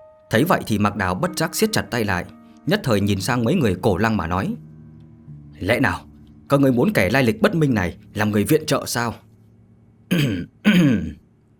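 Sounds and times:
speech: 0:00.3 - 0:04.7, 0:05.6 - 0:09.2, 0:10.1 - 0:11.2
dry throat clearing: 0:10.1 - 0:11.2.

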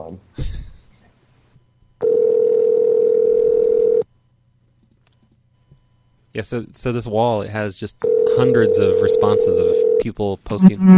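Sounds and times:
steady telephone dial tone: 0:02.0 - 0:04.0
speech: 0:06.4 - 0:10.9.

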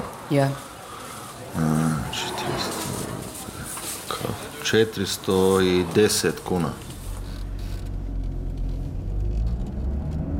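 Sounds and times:
speech: 0:00.3 - 0:00.7, 0:01.5 - 0:02.7, 0:04.2 - 0:06.8
car engine starting: 0:06.7 - 0:10.3.

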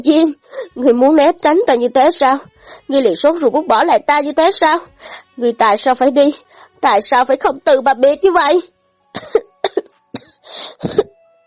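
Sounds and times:
speech: 0:00.0 - 0:09.4, 0:10.6 - 0:11.1
woman kneeling on the ground coughing violently and dryly: 0:09.2 - 0:11.2.

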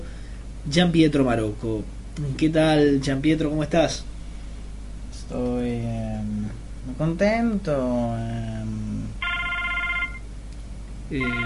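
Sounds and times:
speech: 0:00.7 - 0:04.1, 0:05.2 - 0:09.1, 0:11.1 - 0:11.4
electronic telephone ringing in a studio: 0:09.2 - 0:10.3, 0:11.2 - 0:11.4.

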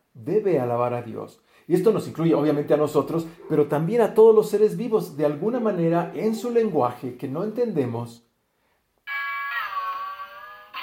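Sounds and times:
speech: 0:00.2 - 0:08.3
doorbell ringing: 0:09.1 - 0:10.8.

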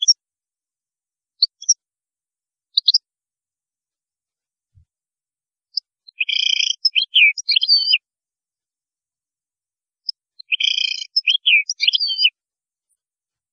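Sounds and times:
European goldfinch chirps and twittering: 0:01.4 - 0:01.8, 0:02.8 - 0:03.0, 0:05.7 - 0:08.0, 0:10.0 - 0:12.3.

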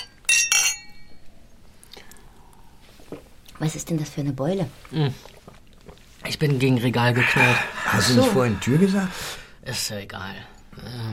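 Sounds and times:
glasses clinking in a toast: 0:00.0 - 0:01.2
speech: 0:03.6 - 0:05.4, 0:06.4 - 0:11.1.

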